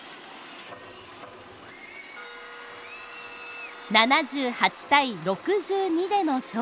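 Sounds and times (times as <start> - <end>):
large indoor crowd cheering after basketball game: 0.0 - 6.6
sustained horn-like tones: 2.1 - 4.7
speech: 3.9 - 6.6.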